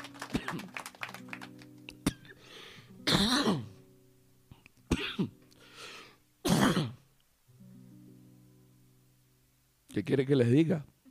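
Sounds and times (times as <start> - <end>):
person clearing throat: 0.3 - 0.7, 3.0 - 3.8, 4.9 - 5.4, 6.4 - 7.1
person coughing in rasping bursts: 3.0 - 3.8, 4.9 - 5.4, 6.4 - 7.0
speech: 10.0 - 11.0.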